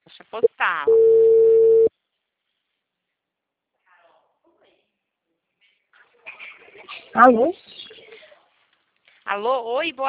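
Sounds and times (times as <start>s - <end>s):
speech: 0.3s - 1.0s, 7.2s - 7.6s, 9.4s - 10.0s
telephone beep after a dropped call: 0.9s - 1.9s.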